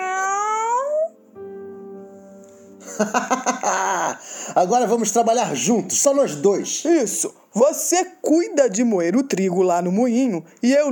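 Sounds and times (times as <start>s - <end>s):
cat meowing: 0.0s - 1.2s
laughter: 2.8s - 4.2s
speech: 3.0s - 3.5s, 4.5s - 10.9s.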